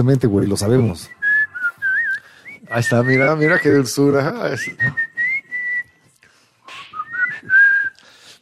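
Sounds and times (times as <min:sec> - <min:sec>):
speech: 0:00.0 - 0:01.2, 0:02.7 - 0:05.1
person whistling a short melodic tune: 0:01.0 - 0:06.0, 0:06.7 - 0:08.3
faint breathy noise: 0:01.6 - 0:02.6, 0:06.2 - 0:08.3.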